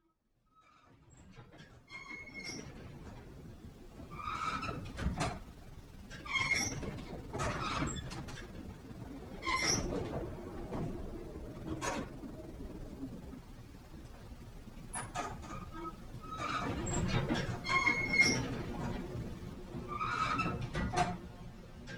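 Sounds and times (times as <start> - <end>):
rattling caused by wind: 3.6 - 21.3.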